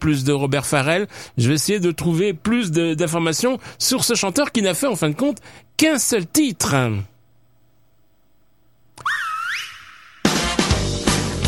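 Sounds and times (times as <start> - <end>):
speech: 0.0 - 7.1
wolf whistle at girls in a song: 9.0 - 10.6
loud music: 10.2 - 11.4.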